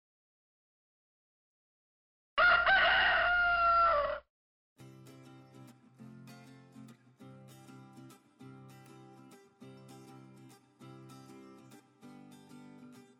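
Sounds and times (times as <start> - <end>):
rooster crowing: 2.4 - 4.2.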